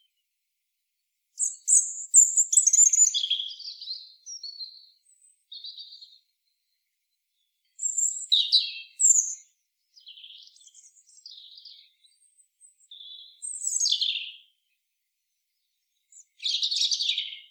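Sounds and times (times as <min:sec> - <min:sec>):
European robin song, Erithacus rubecula: 0:01.4 - 0:17.4.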